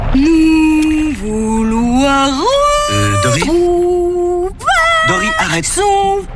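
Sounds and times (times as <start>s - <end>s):
speech: 0.2s - 2.5s, 5.6s - 6.3s
voice imitating a whale call with a long low hum: 2.6s - 3.9s, 4.5s - 5.6s.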